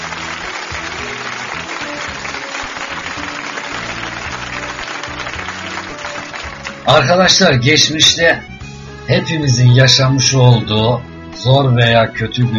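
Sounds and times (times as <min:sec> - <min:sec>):
crowd applauding: 0:00.0 - 0:07.0
speech: 0:06.9 - 0:08.5, 0:09.1 - 0:12.5.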